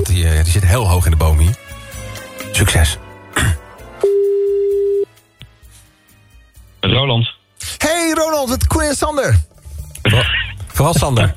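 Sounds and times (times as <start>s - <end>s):
speech: 0.1s - 1.7s, 2.5s - 3.6s, 6.9s - 11.3s
telephone call ring tone: 4.0s - 5.1s.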